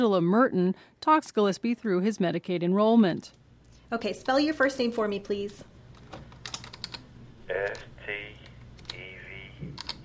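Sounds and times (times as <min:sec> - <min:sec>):
speech: 0:00.0 - 0:05.7, 0:07.5 - 0:07.9
low hum: 0:00.0 - 0:10.0
typing on a computer keyboard in a hospital office: 0:06.4 - 0:07.0, 0:09.8 - 0:10.0.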